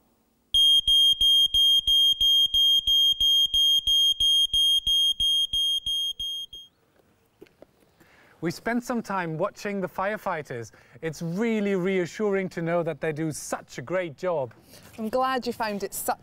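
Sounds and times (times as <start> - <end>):
smoke alarm blaring piercing high-pitched beeps: 0.6 - 6.8
speech: 8.4 - 16.2.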